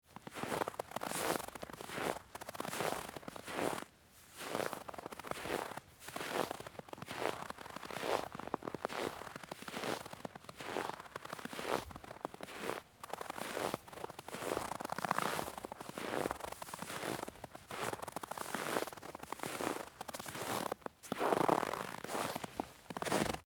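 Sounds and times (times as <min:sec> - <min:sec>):
footsteps in snow: 0:00.2 - 0:23.4.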